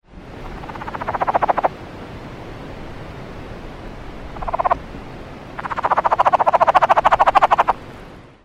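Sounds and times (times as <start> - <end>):
Cascade frog clucking chatter: 0.4 - 1.7, 4.4 - 4.8, 5.6 - 7.8.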